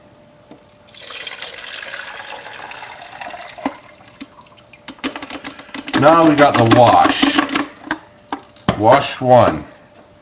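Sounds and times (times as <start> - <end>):
liquid pouring into a beaker: 0.7 - 4.9
speech: 6.0 - 7.4, 8.8 - 9.7.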